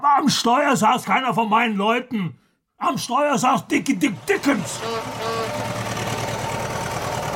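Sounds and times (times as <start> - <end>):
speech: 0.1 - 5.8
delivery van engine droning while driving: 3.9 - 7.3.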